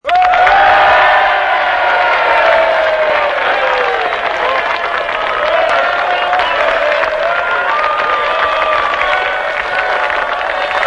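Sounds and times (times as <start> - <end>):
humorous winners' applause: 0.0 - 10.8.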